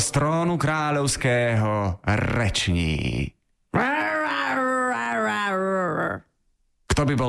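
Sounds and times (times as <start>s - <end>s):
speech: 0.1s - 4.4s, 7.0s - 7.2s
woman imitating a lion's roar: 3.8s - 6.3s.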